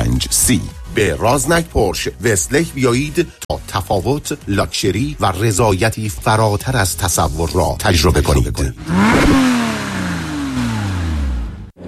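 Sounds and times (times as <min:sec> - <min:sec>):
speech: 0:00.4 - 0:09.7
car engine roaring as it speeds through a red light: 0:08.8 - 0:11.8.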